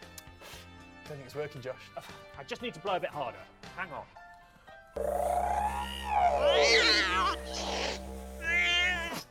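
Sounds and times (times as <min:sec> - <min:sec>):
speech: 0:01.3 - 0:04.2, 0:04.9 - 0:08.0
cats meowing in long wavering cries: 0:06.5 - 0:09.2.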